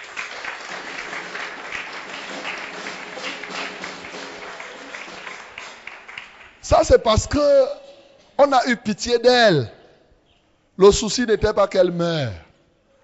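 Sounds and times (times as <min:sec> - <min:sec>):
church congregation applauding during a sermon: 0:00.0 - 0:07.5
speech: 0:06.7 - 0:07.8, 0:08.4 - 0:09.8, 0:10.8 - 0:12.4.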